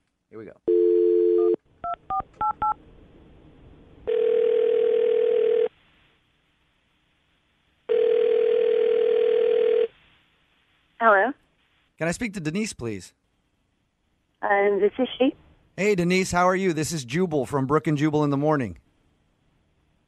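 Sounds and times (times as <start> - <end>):
speech: 0.3 - 0.8, 12.0 - 13.2, 14.4 - 18.8
telephone dial tone: 0.7 - 2.7, 4.1 - 5.7, 7.9 - 9.9.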